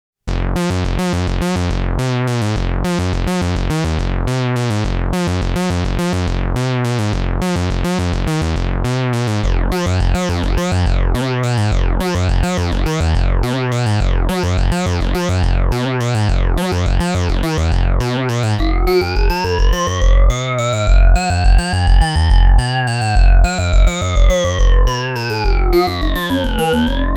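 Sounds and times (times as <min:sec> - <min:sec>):
elastic synth bass from a KORG synthesizer: 0:00.3 - 0:27.1.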